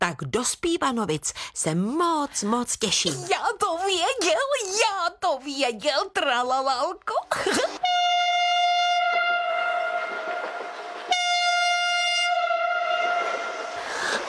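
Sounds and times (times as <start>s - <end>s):
speech: 0.1s - 8.0s
train horn blasts arriving at a station: 7.8s - 13.8s
faint rumble of rail noise: 8.2s - 14.2s.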